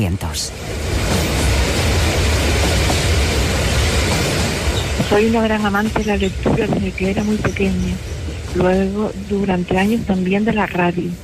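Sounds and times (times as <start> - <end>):
speech: 0.0 - 0.9, 5.1 - 11.2
departing train rumble and broadband hiss: 0.0 - 11.2.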